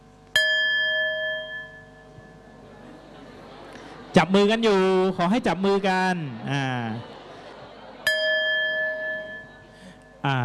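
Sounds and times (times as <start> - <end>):
single bell struck as a signal: 0.4 - 2.6, 8.0 - 10.2
laughter: 2.6 - 10.4
speech: 4.2 - 7.1, 10.2 - 10.4.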